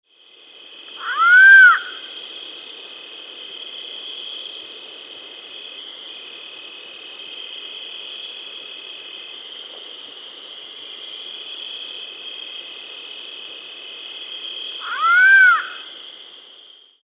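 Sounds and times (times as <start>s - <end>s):
Andean Potoo Nyctibius maculosus calling in South America: 1.0s - 2.0s, 14.8s - 15.8s.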